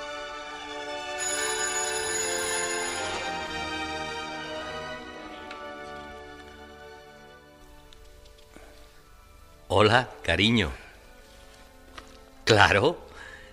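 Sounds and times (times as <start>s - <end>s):
telephone ringing with electronic ringtone: 0.8s - 5.2s
speech: 9.7s - 10.8s, 12.5s - 13.0s.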